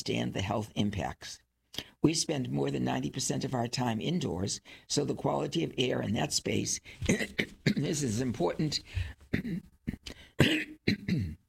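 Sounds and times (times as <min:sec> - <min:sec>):
speech: 0:00.0 - 0:11.4
harsh coughing: 0:07.0 - 0:08.1, 0:09.0 - 0:11.4.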